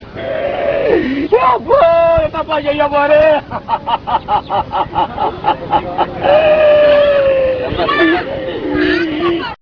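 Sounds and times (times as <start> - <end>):
wail: 0.2 - 2.2, 6.2 - 9.5
laughter: 3.2 - 9.5.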